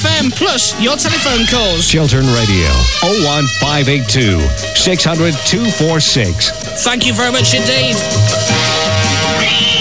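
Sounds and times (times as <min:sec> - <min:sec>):
speech: 0:00.2 - 0:09.7
cat meowing: 0:01.0 - 0:05.0
low hum: 0:01.3 - 0:08.5.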